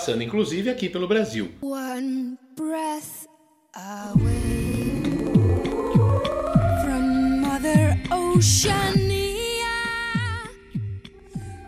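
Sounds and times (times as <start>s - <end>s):
speech: 0.0s - 3.2s, 3.8s - 4.6s, 8.4s - 9.0s
woman singing a slow gliding melody: 1.6s - 11.6s
layered sustained tones: 4.2s - 11.6s
steady deep throbbing pulse: 4.2s - 11.6s.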